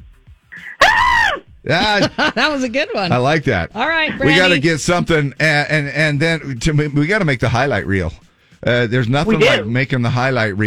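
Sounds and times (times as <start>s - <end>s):
woman screaming excitedly: 0.6s - 1.4s
laughter: 1.7s - 3.3s
speech: 1.7s - 10.6s.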